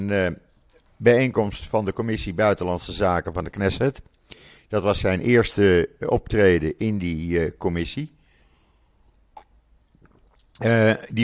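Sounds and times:
speech: 0:00.0 - 0:08.2, 0:10.6 - 0:11.2
person sipping water: 0:09.0 - 0:10.7
swallowing and mouth sounds: 0:09.1 - 0:10.6.

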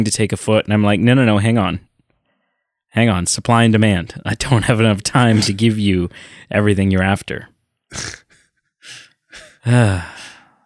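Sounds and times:
speech: 0:00.0 - 0:01.9, 0:02.9 - 0:08.2, 0:09.6 - 0:10.6
breathy inhales and exhales: 0:06.1 - 0:06.5, 0:07.9 - 0:10.6
person yawning: 0:07.9 - 0:10.5.

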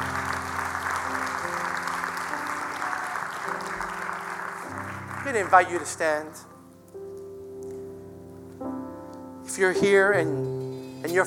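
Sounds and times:
audience applause: 0:00.0 - 0:06.3
speech: 0:05.3 - 0:06.5, 0:09.6 - 0:11.2.

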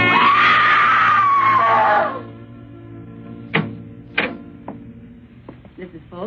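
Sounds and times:
woman screaming: 0:00.2 - 0:02.3
sharp clicks and knocks: 0:03.5 - 0:05.8.

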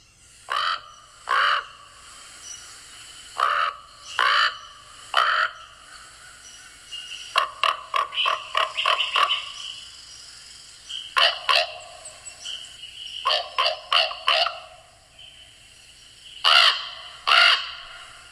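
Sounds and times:
common raven croaking: 0:00.4 - 0:09.8, 0:11.1 - 0:15.0, 0:16.4 - 0:18.2.

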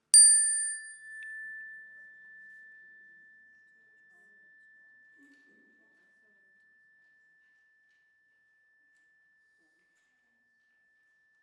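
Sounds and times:
chime struck during a service of remembrance: 0:00.0 - 0:05.5.

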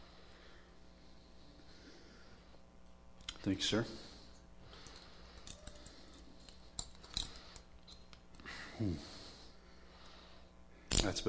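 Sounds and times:
low steady hum: 0:00.0 - 0:11.2
speech: 0:03.4 - 0:04.1, 0:08.8 - 0:09.2, 0:11.0 - 0:11.2
handcuffs being unlocked and removed: 0:05.4 - 0:06.2, 0:06.8 - 0:08.2.

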